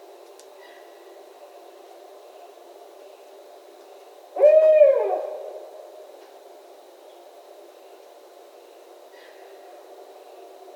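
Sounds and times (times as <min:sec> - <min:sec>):
barred owl calling: 0:04.3 - 0:05.8.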